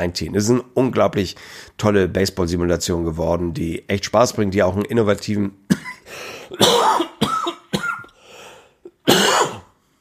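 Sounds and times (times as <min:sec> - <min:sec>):
speech: 0:00.0 - 0:07.1
person coughing: 0:05.7 - 0:08.2, 0:08.9 - 0:09.8.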